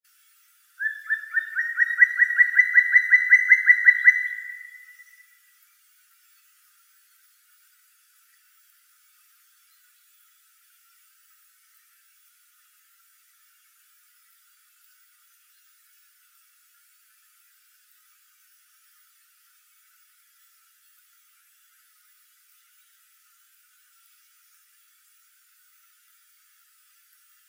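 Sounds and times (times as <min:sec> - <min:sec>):
black woodpecker Dryocopus martius: 0:00.8 - 0:05.2.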